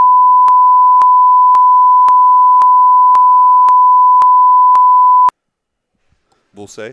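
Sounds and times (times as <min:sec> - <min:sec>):
censor bleep tone: 0:00.0 - 0:05.3
speech: 0:06.6 - 0:06.9.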